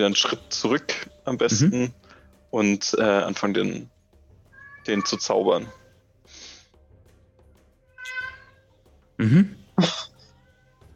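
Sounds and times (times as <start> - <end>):
speech: 0.0 - 3.9, 4.8 - 5.8, 9.2 - 10.1
person murmuring: 1.5 - 1.9, 9.2 - 10.2
cat meowing: 4.5 - 5.9, 7.9 - 8.6.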